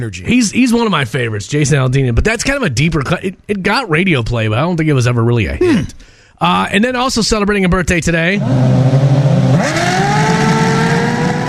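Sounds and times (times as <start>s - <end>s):
speech: 0.0s - 9.8s
race car engine revving: 8.4s - 11.4s.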